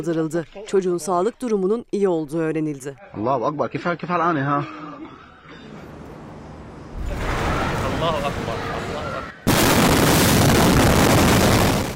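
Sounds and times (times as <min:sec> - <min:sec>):
speech: 0:00.0 - 0:04.9, 0:08.0 - 0:08.8
loud explosion with rushing shock wave: 0:06.9 - 0:08.8, 0:09.5 - 0:11.9.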